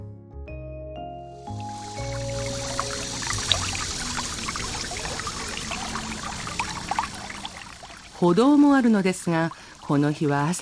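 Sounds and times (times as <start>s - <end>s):
soft musical chords: 0.8s - 5.9s
babbling stream gurgling and trickling: 1.5s - 10.6s
speech: 8.2s - 10.6s.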